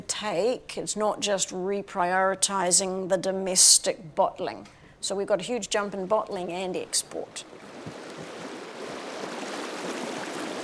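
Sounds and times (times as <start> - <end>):
speech: 0.2 - 8.0
river water flowing: 7.4 - 10.6.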